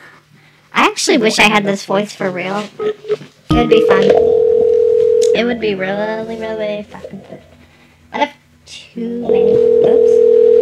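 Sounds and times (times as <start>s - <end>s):
speech: 1.0s - 4.4s, 5.4s - 7.5s, 8.1s - 10.5s
telephone dial tone while calling: 4.2s - 5.4s, 9.6s - 10.6s.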